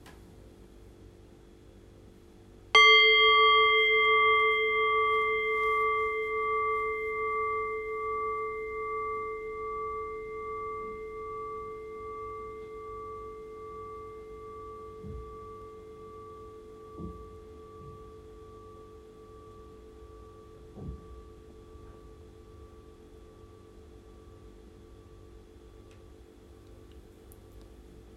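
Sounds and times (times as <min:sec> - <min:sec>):
meditation bell struck and ringing: 0:02.8 - 0:25.3.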